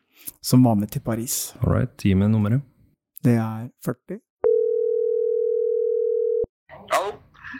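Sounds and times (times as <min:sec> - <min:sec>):
speech: 0:00.4 - 0:04.3
telephone tone from a phone call being placed: 0:04.4 - 0:06.5.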